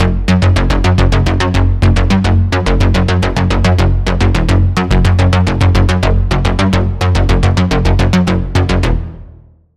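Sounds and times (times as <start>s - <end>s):
stepping synth bass notes: 0.0s - 9.6s.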